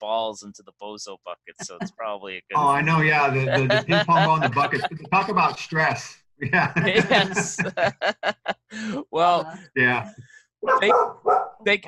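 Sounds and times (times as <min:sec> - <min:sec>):
speech: 0:00.0 - 0:11.8
laughter: 0:01.6 - 0:10.2
boxer dog barking: 0:10.6 - 0:11.6.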